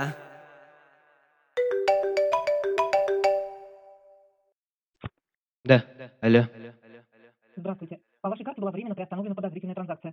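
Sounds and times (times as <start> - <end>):
speech: 0.0 - 0.2, 5.7 - 6.6, 7.6 - 10.1
phone ringtone with bright rapid chiming tones: 1.6 - 4.3.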